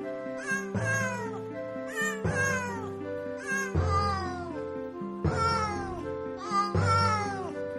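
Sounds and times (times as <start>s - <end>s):
cat meowing and caterwauling: 0.3s - 4.6s, 5.2s - 7.6s.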